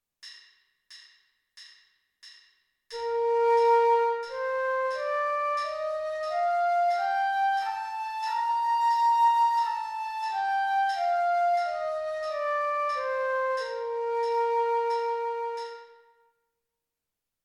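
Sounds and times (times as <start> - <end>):
flute playing a B flat major scale: 3.0 - 16.2.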